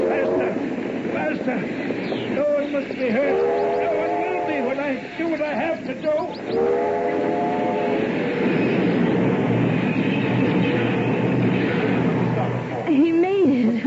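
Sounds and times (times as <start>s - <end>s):
brief horn-like tone of a train: 0.0s - 0.7s, 3.1s - 5.0s, 6.6s - 8.4s, 9.9s - 12.1s
train rumbling steadily along the rails: 0.0s - 13.8s
speech: 3.0s - 3.5s.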